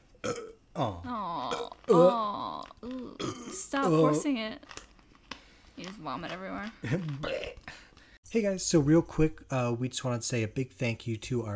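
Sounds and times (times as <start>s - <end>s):
loud croaking belches: 0.1s - 4.2s, 6.8s - 7.8s
speech: 0.8s - 1.3s, 1.9s - 2.2s, 3.7s - 4.8s, 5.8s - 7.7s, 8.3s - 11.5s.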